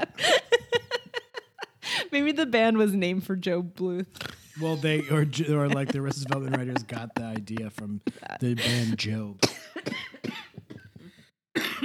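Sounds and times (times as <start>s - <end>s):
laughter: 0.0s - 1.9s, 4.6s - 9.4s
speech: 2.1s - 10.0s
person coughing: 5.7s - 11.8s.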